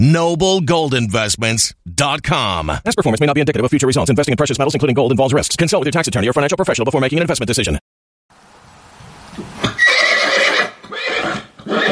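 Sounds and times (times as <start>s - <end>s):
speech: 0.0s - 7.9s
horse whinnying: 9.6s - 11.8s.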